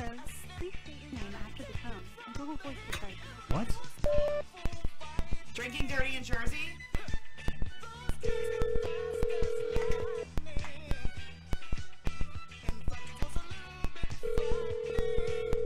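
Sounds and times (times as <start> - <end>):
rhythmic music: 0.0 - 15.6
speech: 2.4 - 4.2, 5.6 - 7.0
telephone line electronic beeps as a call is placed: 8.3 - 10.2, 14.2 - 15.6.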